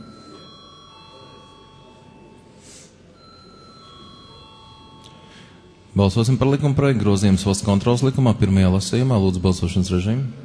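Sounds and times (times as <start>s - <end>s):
faint murmur: 0.0s - 6.0s
parliament chamber electric bell rung before a vote: 0.0s - 6.5s
speech: 6.0s - 10.4s.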